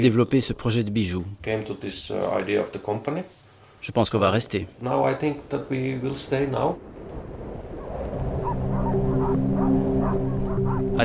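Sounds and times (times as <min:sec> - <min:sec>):
speech: 0:00.0 - 0:07.3
pack of sled dogs barking and yelping excitedly: 0:07.8 - 0:11.0.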